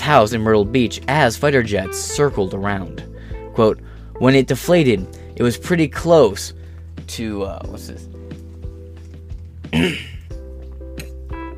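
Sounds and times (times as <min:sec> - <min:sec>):
speech: 0:00.1 - 0:08.2, 0:09.7 - 0:10.1
throat clearing: 0:09.7 - 0:10.3.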